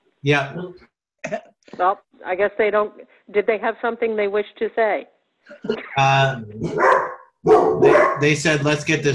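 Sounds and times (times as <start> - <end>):
speech: 0.2 - 9.1
dog barking with howling tonal quality: 6.6 - 8.3.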